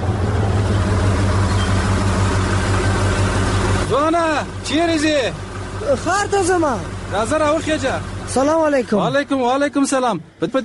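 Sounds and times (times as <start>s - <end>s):
lorry engine idling: 0.0s - 10.6s
speech: 4.7s - 10.6s.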